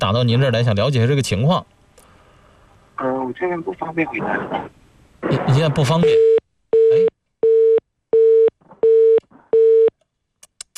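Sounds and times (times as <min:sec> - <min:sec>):
speech: 0:00.0 - 0:01.8, 0:03.0 - 0:07.1
telephone busy tone after a hang-up: 0:06.2 - 0:09.9.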